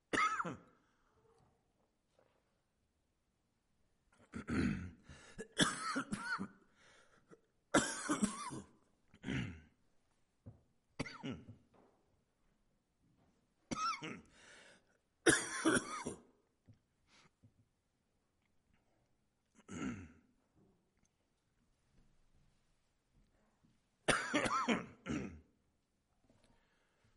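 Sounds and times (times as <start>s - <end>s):
person clearing throat: 0.1s - 0.8s, 4.2s - 6.6s, 7.3s - 9.8s, 11.0s - 11.6s, 13.7s - 14.3s, 15.3s - 16.3s, 19.6s - 20.3s, 24.1s - 25.6s
person coughing in short harsh bursts: 0.1s - 0.8s, 4.2s - 6.6s, 7.3s - 9.7s, 11.0s - 11.6s, 13.7s - 14.3s, 15.3s - 16.4s, 19.6s - 20.3s, 24.1s - 25.5s.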